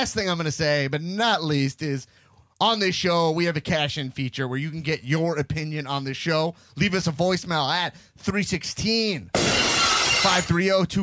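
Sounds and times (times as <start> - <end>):
speech: 0.0 - 11.0
glass shattering: 9.4 - 10.7.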